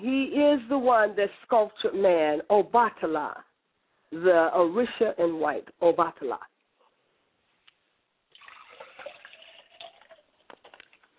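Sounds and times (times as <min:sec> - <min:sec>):
speech: 0:00.3 - 0:03.5, 0:04.1 - 0:06.5
liquid poured as a libation, splashing: 0:08.3 - 0:11.1.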